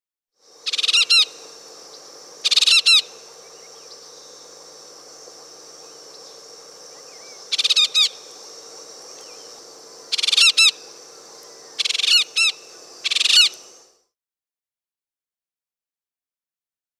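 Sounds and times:
Yellow-tufted Woodpecker Melanerpes cruentatus calling in Peru: 0.6s - 4.7s, 5.8s - 13.8s.

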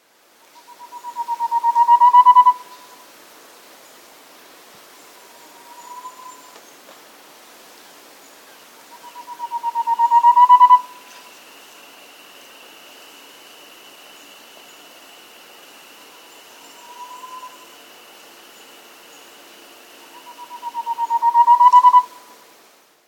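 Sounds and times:
Gray-naped antpitta calling in South America: 0.6s - 3.0s, 5.2s - 6.6s, 8.9s - 12.9s, 15.6s - 22.4s.

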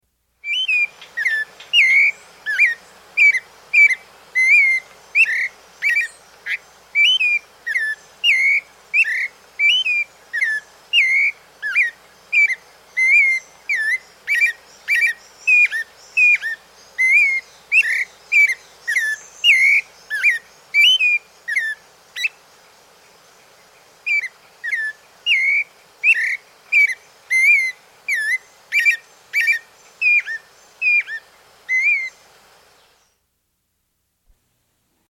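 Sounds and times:
Clay-Colored Robin calling in South America: 0.4s - 22.5s, 23.4s - 33.1s.

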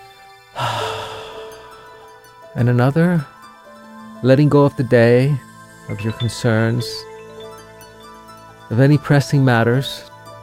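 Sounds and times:
deep meditation breath inhaled through nose and exhaled through mouth: 0.5s - 2.5s
speech: 2.6s - 3.4s, 4.2s - 7.1s, 8.7s - 10.1s.

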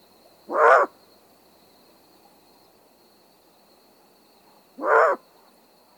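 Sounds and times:
faint steady insect-like hum: 0.0s - 5.9s
adult great horned owl alarm barks near its nest: 0.5s - 1.0s, 4.8s - 5.2s.

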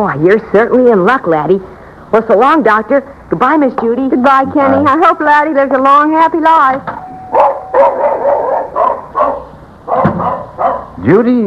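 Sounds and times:
speech: 0.0s - 7.5s, 11.0s - 11.4s
dog barking: 7.3s - 11.0s.

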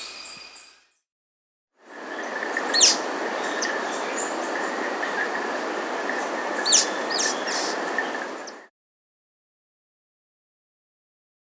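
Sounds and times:
Slaty Antwren Myrmotherula schisticolor calling in South America: 1.9s - 8.7s.

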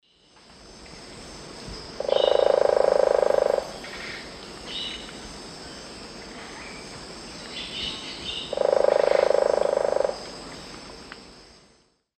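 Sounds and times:
Celeus spectabilis woodpecker drumming in South American eastern lowlands: 2.0s - 3.7s, 8.5s - 10.2s.

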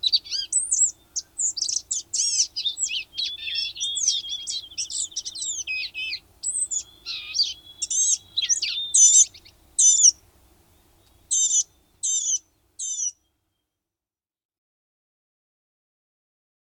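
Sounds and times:
blue-gray gnatcatcher squeaky song in North America: 0.0s - 10.1s.

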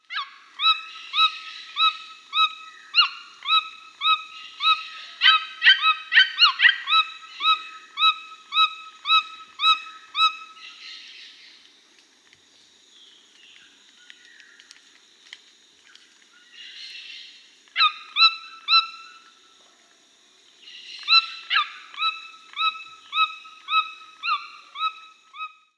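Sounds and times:
Red-billed Toucan Ramphastos tucanus calling in Peru: 0.0s - 11.1s, 17.7s - 19.3s, 20.7s - 25.6s.

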